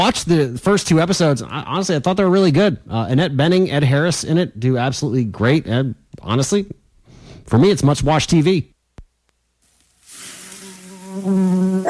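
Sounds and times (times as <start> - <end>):
speech: 0.0 - 6.8, 7.5 - 8.7, 11.2 - 11.8
mosquitoes buzzing: 10.4 - 11.8.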